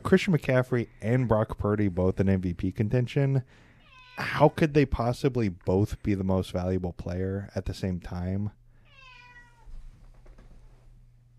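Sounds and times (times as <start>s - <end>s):
low hum: 0.0s - 11.3s
speech: 0.1s - 8.6s
cat meowing: 3.8s - 4.5s, 8.8s - 9.8s.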